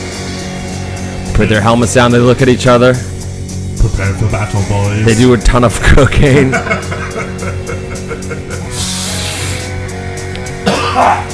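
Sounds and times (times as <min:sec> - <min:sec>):
speech: 0:01.4 - 0:03.1, 0:03.8 - 0:07.0, 0:11.0 - 0:11.2
laughter: 0:06.3 - 0:08.9
person coughing: 0:10.6 - 0:11.3.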